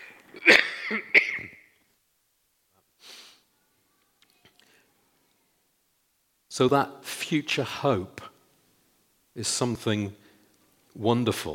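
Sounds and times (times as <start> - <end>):
person coughing sharply: 0.0 - 1.7
speech: 6.6 - 8.3, 9.4 - 10.2, 11.0 - 11.5.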